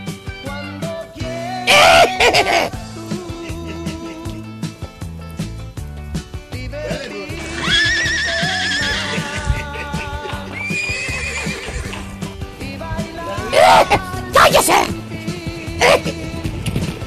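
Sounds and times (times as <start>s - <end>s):
steady rhythmic backing: 0.0s - 16.6s
horse whinnying and neighing: 1.7s - 2.8s, 7.4s - 12.4s, 13.3s - 15.1s, 15.7s - 16.3s
laughter: 1.7s - 4.4s, 6.9s - 11.6s, 13.0s - 14.9s, 15.8s - 16.3s
speech: 2.3s - 2.8s.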